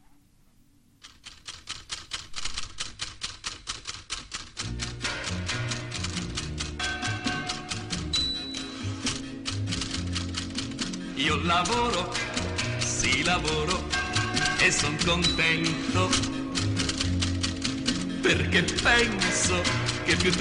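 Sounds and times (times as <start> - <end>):
typewriter typing: 1.0 - 20.3
musical arrangement with bass and melody: 4.7 - 20.3
speech: 11.4 - 12.2, 13.1 - 16.4, 18.3 - 20.3.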